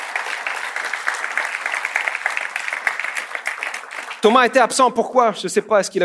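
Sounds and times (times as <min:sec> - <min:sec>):
church audience applauding: 0:00.0 - 0:04.7
speech: 0:04.2 - 0:06.0.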